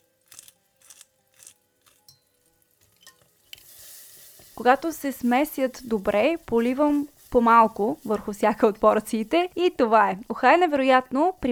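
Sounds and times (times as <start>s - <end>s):
sweet and hot red paprika sizzling in fat in a small pan on a stovetop: 0.0s - 11.5s
stirring scrapes in a small pan: 2.8s - 9.8s
speech: 4.6s - 11.5s.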